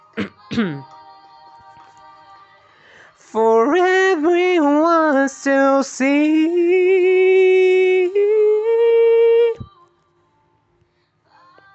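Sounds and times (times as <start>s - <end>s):
speech: 0.6s - 0.9s, 3.3s - 7.1s
man breathing between sung notes: 2.7s - 3.2s
man singing in a light head voice without accompaniment: 3.1s - 9.8s.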